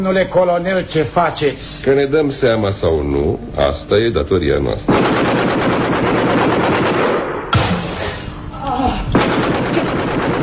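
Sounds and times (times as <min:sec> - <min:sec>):
speech: 0:00.0 - 0:06.6
sustained automatic gunfire during an armed attack in a snowy town: 0:04.9 - 0:07.9, 0:09.2 - 0:10.4
sharp bang: 0:07.3 - 0:08.5.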